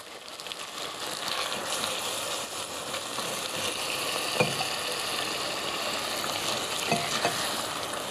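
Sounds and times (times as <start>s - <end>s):
coconut milk sizzling and bubbling in a pan of cassia curry: 0.0s - 8.1s.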